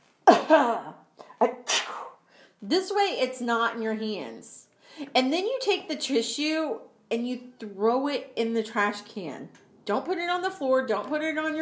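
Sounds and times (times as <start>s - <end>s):
staged vampire cough into an elbow: 0.2s - 2.2s
speech: 0.5s - 1.5s, 2.6s - 11.6s
huffs of breath: 4.8s - 5.1s.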